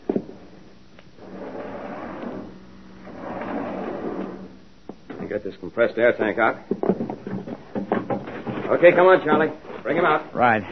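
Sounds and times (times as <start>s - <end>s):
steady low hum: 0.0s - 5.2s
heavy door grinding and sliding open: 1.2s - 4.6s
speech: 5.3s - 6.9s, 8.7s - 10.7s.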